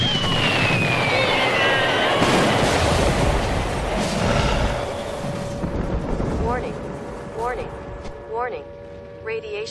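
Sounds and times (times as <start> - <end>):
descending whistles: 0.0 - 3.2
continuous barrage of explosions and rumbling blasts: 0.0 - 8.0.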